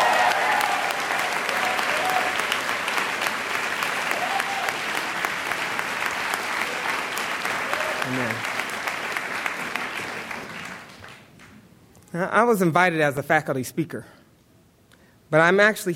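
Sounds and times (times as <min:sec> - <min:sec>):
audience applause at a commencement ceremony: 0:00.0 - 0:11.5
speech: 0:12.2 - 0:14.2, 0:15.3 - 0:15.9.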